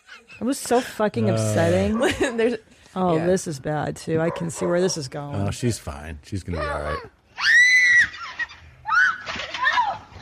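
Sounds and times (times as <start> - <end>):
speech: 0.4 - 7.6
woman screaming while falling: 7.4 - 10.1.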